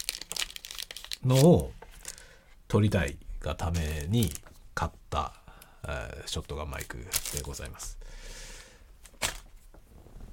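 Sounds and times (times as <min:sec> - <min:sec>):
crinkling thin stiff paraffin-paper envelope window: 0:00.0 - 0:02.3, 0:06.8 - 0:07.7
speech: 0:01.2 - 0:01.8, 0:02.7 - 0:08.4.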